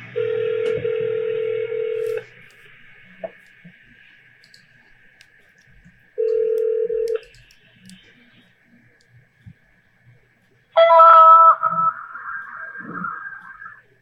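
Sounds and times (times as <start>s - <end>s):
phone-line ringing tone: 0.0s - 2.2s, 6.2s - 7.2s, 10.8s - 13.2s
small phone line clicks: 4.4s - 8.1s.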